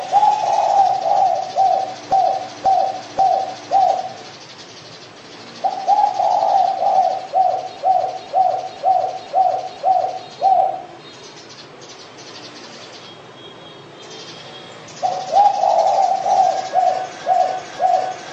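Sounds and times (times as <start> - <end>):
pigeon giving low rhythmic coos: 0.0 - 4.4, 5.4 - 11.0, 15.0 - 18.3.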